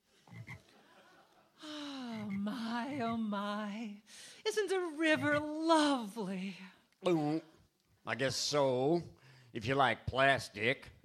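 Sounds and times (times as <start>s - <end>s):
frog croaking: 0.3s - 0.6s
laughter: 0.6s - 1.6s
speech: 3.0s - 11.0s.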